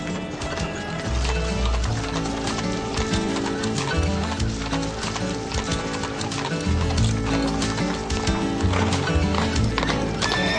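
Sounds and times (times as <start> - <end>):
dense continuous music: 0.0 - 10.5
horse hooves clip-clopping: 0.0 - 10.5
horse neighing: 9.9 - 10.5.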